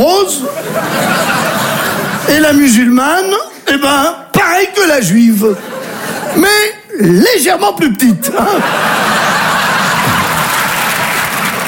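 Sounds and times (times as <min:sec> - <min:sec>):
speech: 0:00.1 - 0:01.2, 0:02.3 - 0:05.7, 0:06.3 - 0:09.0
scattered laughter: 0:00.4 - 0:02.3, 0:05.6 - 0:06.4, 0:08.2 - 0:11.1
audience applause: 0:08.7 - 0:11.6.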